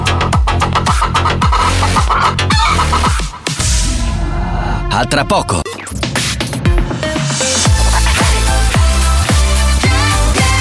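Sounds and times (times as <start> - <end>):
dense thumping beats: 0.0 - 4.5, 5.8 - 10.5
hen clucking: 0.2 - 3.4
speech: 5.0 - 5.7.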